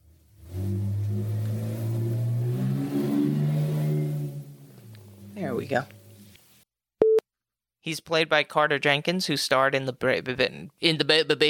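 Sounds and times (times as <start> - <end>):
car engine revving outside: 0.0 - 6.3
speech: 5.6 - 6.0, 7.8 - 11.4.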